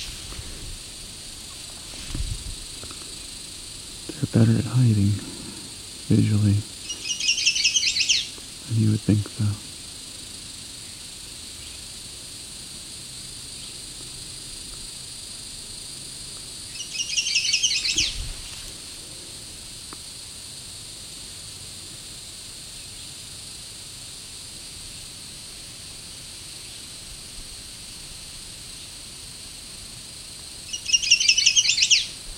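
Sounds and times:
steady hiss: 0.0 - 32.3
speech: 4.3 - 5.3, 6.1 - 6.7, 8.7 - 9.7
bird chirping loudly from a black spruce: 6.8 - 8.3, 16.7 - 18.2, 30.7 - 32.2.

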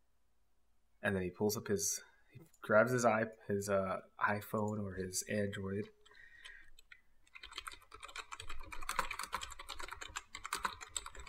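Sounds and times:
speech: 1.0 - 6.0
keyboard keys typing: 6.0 - 11.2.

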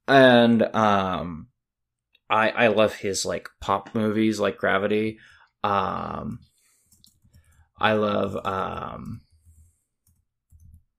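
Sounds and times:
speech: 0.1 - 1.5, 2.3 - 6.5, 7.8 - 9.2
typing on a computer keyboard: 6.9 - 7.6, 9.1 - 10.9.

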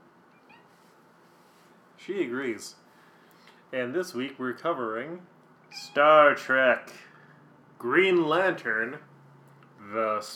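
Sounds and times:
low room noise: 0.0 - 10.3
speech: 2.0 - 2.8, 3.7 - 7.1, 7.8 - 9.1, 9.8 - 10.3
domestic cat meowing: 5.7 - 6.2.

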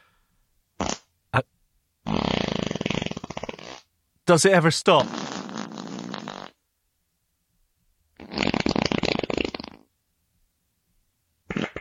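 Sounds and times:
fart: 0.8 - 1.1, 2.0 - 3.9, 5.0 - 6.6, 8.2 - 9.9, 11.5 - 11.7
speech: 4.3 - 5.3.

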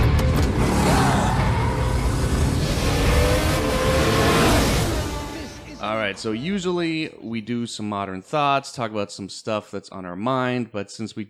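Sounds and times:
racing car engine roaring: 0.1 - 6.3
speech: 6.1 - 11.2.

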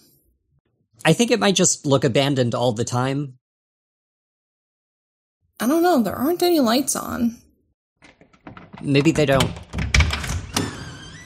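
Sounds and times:
speech: 1.0 - 3.4, 5.6 - 7.4, 8.8 - 9.7
door being pushed open: 8.0 - 11.2.

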